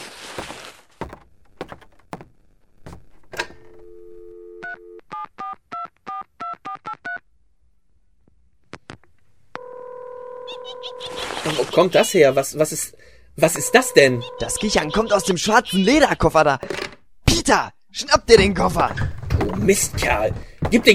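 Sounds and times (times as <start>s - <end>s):
steady phone ringing tone: 3.7s - 5.6s, 9.6s - 11.1s, 13.4s - 15.4s
speech: 11.5s - 16.8s, 17.5s - 20.9s
dual-tone phone keypad beeps dialing a number: 13.6s - 15.3s.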